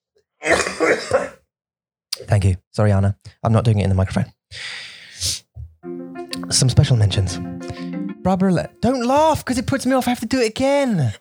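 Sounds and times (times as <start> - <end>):
person coughing and clearing throat: 0.4 - 1.4
speech: 0.8 - 1.3, 2.4 - 5.4, 6.5 - 11.1.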